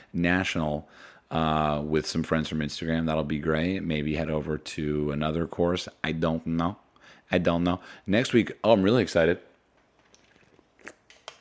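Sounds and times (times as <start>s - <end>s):
speech: 0.1s - 9.5s
sips of sparkling water: 10.0s - 11.1s
wet slurps: 10.0s - 11.2s
gulp: 10.1s - 11.2s.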